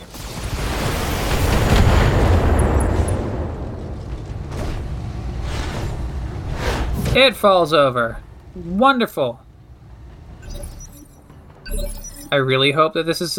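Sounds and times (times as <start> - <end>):
explosions in a video game: 0.0 - 7.4, 10.4 - 13.3
speech: 7.2 - 9.4, 11.7 - 13.3.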